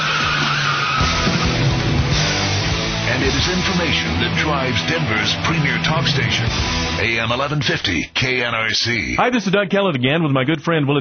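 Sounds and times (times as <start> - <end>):
car engine revving: 0.0 - 7.0
speech: 3.4 - 10.9.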